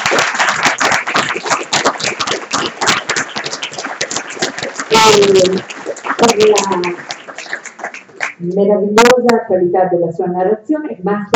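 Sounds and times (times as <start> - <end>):
audience applause: 0.0 - 8.4
speech: 5.1 - 7.1, 8.4 - 11.3.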